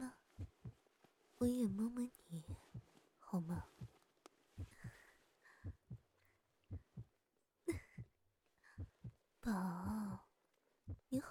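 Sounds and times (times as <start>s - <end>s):
heartbeat thumping: 0.0s - 4.0s, 4.6s - 5.0s, 5.6s - 6.1s, 6.7s - 9.2s, 9.8s - 10.2s, 10.9s - 11.3s
speech: 1.4s - 3.8s, 9.5s - 9.9s.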